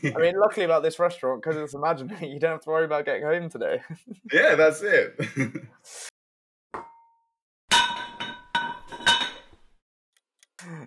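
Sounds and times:
speech: 0.0 - 6.1
glasses of red wine clinking: 6.8 - 9.4.

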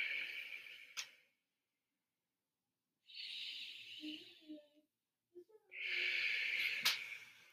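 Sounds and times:
slow deep breathing: 0.0 - 1.3, 3.1 - 4.5, 5.8 - 7.5.

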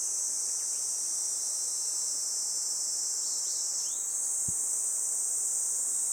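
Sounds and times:
Kaempfer cicada chorus in a forest by the Tama River in summer: 0.0 - 6.1.

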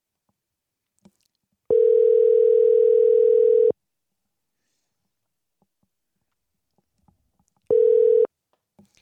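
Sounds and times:
buzzy telephone dial tone after a dropped call on a bad connection: 1.7 - 3.7, 7.7 - 8.3.

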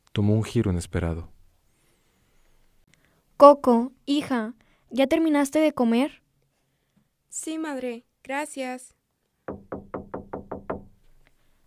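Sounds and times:
speech: 0.2 - 1.4, 3.4 - 6.2, 7.3 - 9.8
loud knocks on a door: 9.5 - 11.0.

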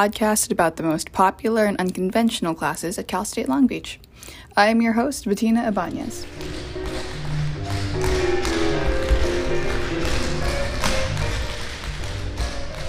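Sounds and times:
speech: 0.0 - 6.8
tap shoes of a dance class tapping: 6.0 - 12.8.

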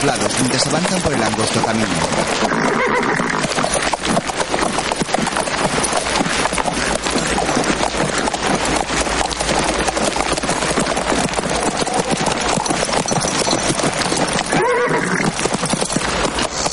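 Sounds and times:
speech: 0.0 - 3.0
horse hooves clip-clopping through a canyon: 0.0 - 16.7
horse neighing: 2.0 - 3.6, 14.5 - 15.4.

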